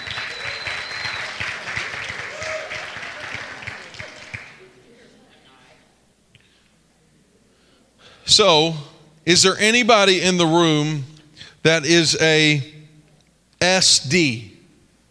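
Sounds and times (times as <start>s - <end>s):
crowd applauding: 0.0s - 4.7s
speech: 8.4s - 12.7s, 13.7s - 14.5s.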